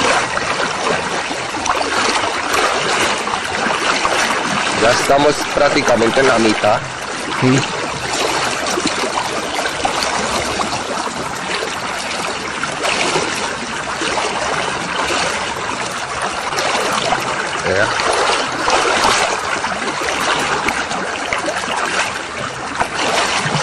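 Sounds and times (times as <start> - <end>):
rushing river water: 0.0 - 23.6
speech: 5.0 - 7.8.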